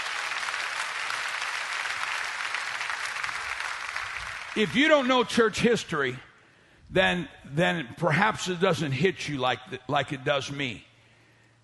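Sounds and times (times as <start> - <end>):
congregation clapping: 0.0 - 5.5
speech: 4.6 - 6.3, 6.9 - 10.9.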